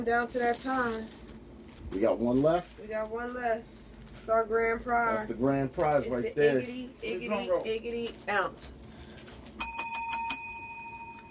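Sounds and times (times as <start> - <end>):
speech: 0.0 - 1.2, 1.9 - 8.8
small bell rung rapidly: 9.6 - 11.2.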